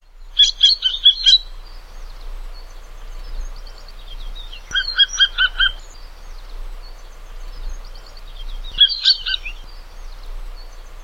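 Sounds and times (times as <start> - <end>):
Corsican nuthatch calling: 0.3 - 1.6, 3.2 - 6.1, 7.5 - 10.2.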